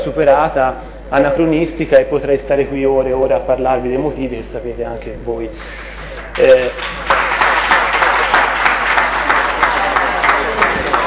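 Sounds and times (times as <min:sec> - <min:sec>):
speech: 0:00.0 - 0:07.2
audience applauding: 0:06.1 - 0:11.0.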